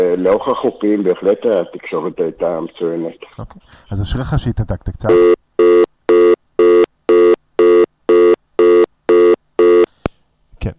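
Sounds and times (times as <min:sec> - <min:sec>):
speech: 0:00.0 - 0:05.4
telephone busy tone after a disconnected call: 0:05.1 - 0:09.9.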